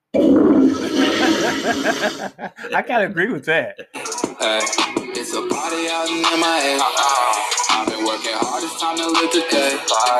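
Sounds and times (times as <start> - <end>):
toilet flushing: 0.2 - 2.3
laughter: 0.8 - 2.9
speech: 1.8 - 10.1.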